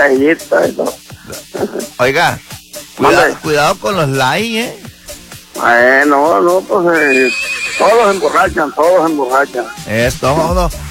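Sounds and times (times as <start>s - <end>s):
speech: 0.0s - 4.8s, 5.6s - 10.8s
wild horse neighing: 6.9s - 9.8s.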